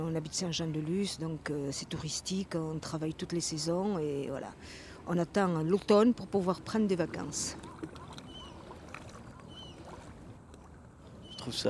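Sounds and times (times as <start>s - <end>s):
speech: 0.0s - 8.0s, 11.4s - 11.6s
gentle water lapping at a riverbank: 0.0s - 11.6s
faint bird chirps: 7.5s - 10.0s, 11.2s - 11.6s.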